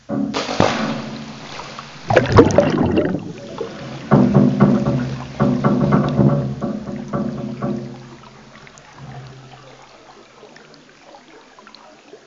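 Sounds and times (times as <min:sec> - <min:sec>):
splashdown on Earth: 0:00.0 - 0:09.5.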